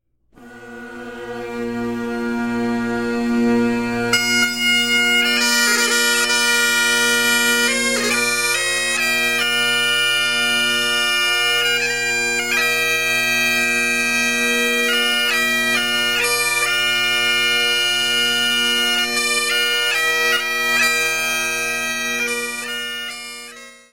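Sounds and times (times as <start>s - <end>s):
musical duet: 0.4s - 23.9s.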